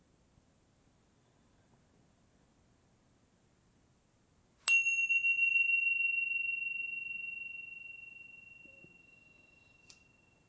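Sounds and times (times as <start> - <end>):
meditation bell struck during a guided meditation: 4.7 - 10.4.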